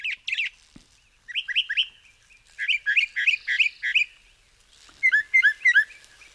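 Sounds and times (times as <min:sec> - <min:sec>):
northern mockingbird singing: 0:00.0 - 0:04.2, 0:05.0 - 0:06.3.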